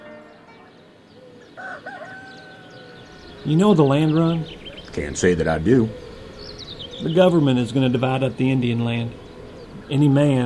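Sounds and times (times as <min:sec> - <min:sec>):
outdoor noise: 0:00.0 - 0:10.4
rooster crowing: 0:01.2 - 0:03.5
speech: 0:01.6 - 0:02.3, 0:03.4 - 0:06.0, 0:07.0 - 0:09.2, 0:09.8 - 0:10.4.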